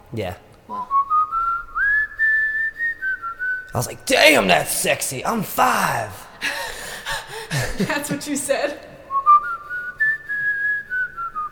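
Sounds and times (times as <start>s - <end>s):
speech: 0.1s - 0.9s, 3.7s - 6.6s, 7.8s - 8.9s
person whistling a tune: 0.7s - 3.8s, 9.1s - 11.5s
laughter: 5.6s - 8.9s.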